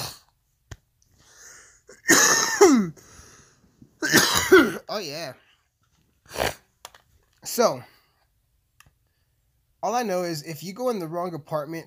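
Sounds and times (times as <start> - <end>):
harsh raspy coughing after smoking a cannabis dab: 1.8 - 3.3, 4.0 - 5.0
speech: 5.0 - 5.5, 7.5 - 7.9, 9.8 - 11.8.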